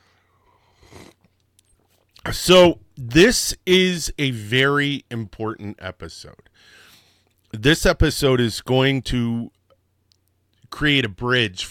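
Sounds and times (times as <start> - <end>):
soft slurp of someone sipping coffee: 0.7 - 1.3
speech: 2.3 - 6.8, 7.5 - 9.6, 10.7 - 11.6.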